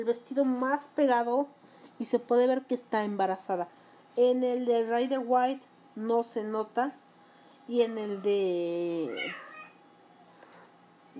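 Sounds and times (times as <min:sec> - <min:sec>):
speech: 0:00.0 - 0:07.0, 0:07.7 - 0:09.4
domestic cat meowing: 0:09.1 - 0:11.1.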